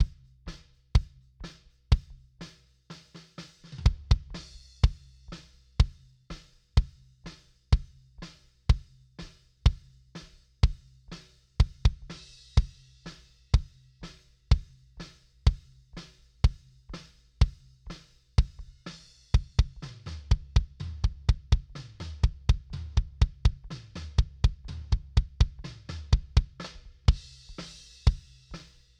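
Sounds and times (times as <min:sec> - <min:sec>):
equalized kick drum: 0:00.0 - 0:00.3, 0:01.0 - 0:01.2, 0:01.9 - 0:02.2, 0:03.8 - 0:05.0, 0:05.8 - 0:06.0, 0:06.8 - 0:07.1, 0:07.7 - 0:08.0, 0:08.7 - 0:09.9, 0:10.6 - 0:10.9, 0:11.6 - 0:12.8, 0:13.6 - 0:13.8, 0:14.5 - 0:14.8, 0:15.5 - 0:15.7, 0:16.4 - 0:17.8, 0:18.4 - 0:27.4.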